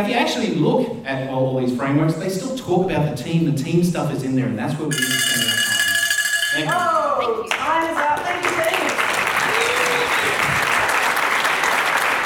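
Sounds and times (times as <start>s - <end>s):
speech: 0.0s - 5.6s, 6.5s - 8.7s
audience applause: 7.6s - 12.2s.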